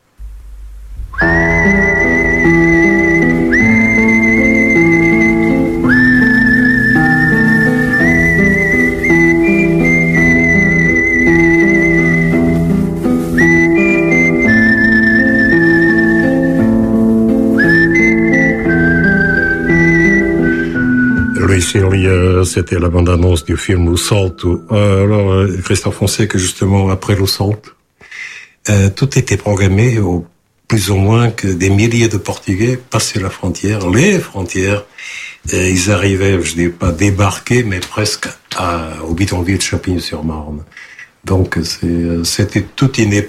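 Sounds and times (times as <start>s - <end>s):
full musical backing in a film trailer: 0.0s - 26.6s
whistled melody in a film trailer: 1.0s - 25.3s
speech: 22.6s - 27.8s, 28.7s - 43.2s.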